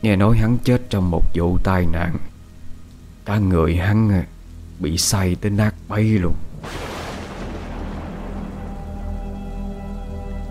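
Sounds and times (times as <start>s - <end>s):
speech: 0.0s - 2.3s, 3.2s - 6.8s
steady rainfall: 2.4s - 10.4s.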